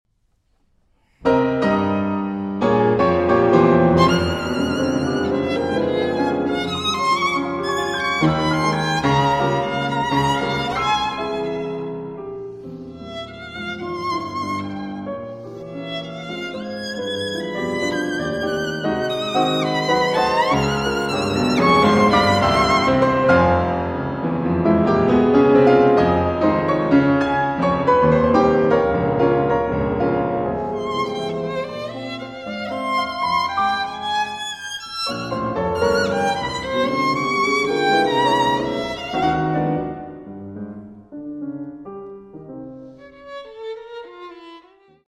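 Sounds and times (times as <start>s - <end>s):
violin and piano sonata in F minor: 1.2s - 45.0s.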